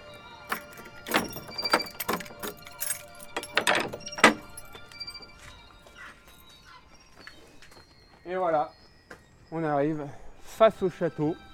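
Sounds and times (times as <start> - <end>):
keys jangling and clinking: 0.0 - 6.8
faint outdoor ambience: 0.0 - 11.5
metallic rattling of large door lock: 0.4 - 5.2
speech: 9.6 - 11.5.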